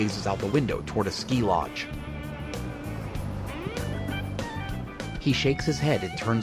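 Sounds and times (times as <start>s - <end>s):
speech: 0.0s - 2.1s, 5.2s - 6.4s
silver bus with blue and red stripes driving along a road: 1.0s - 5.4s.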